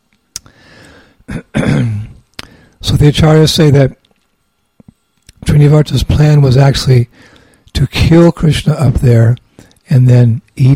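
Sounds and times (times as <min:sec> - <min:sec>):
person coughing after swallowing water the wrong way: 0:01.3 - 0:02.2
speech: 0:03.0 - 0:04.0, 0:05.5 - 0:10.7.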